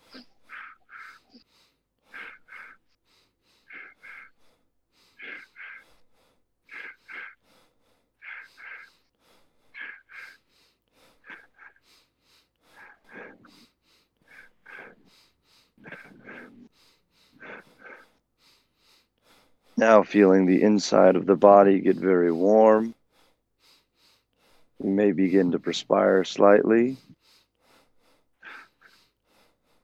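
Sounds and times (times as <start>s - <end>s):
rapid rhythmic breathing in a breathing exercise: 0.0s - 29.8s
speech: 19.8s - 23.0s, 25.1s - 27.1s.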